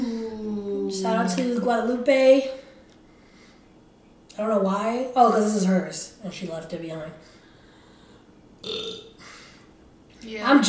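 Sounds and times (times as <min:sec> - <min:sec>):
speech: 0:01.0 - 0:02.6, 0:04.4 - 0:07.3, 0:10.2 - 0:10.6
loud resonant burp: 0:08.6 - 0:09.2.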